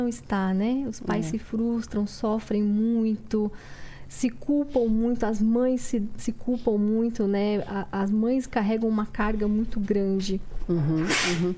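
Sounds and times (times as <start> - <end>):
speech: 0.0 - 11.5
person murmuring acknowledgements: 10.7 - 11.5
breathy sneeze: 11.0 - 11.5.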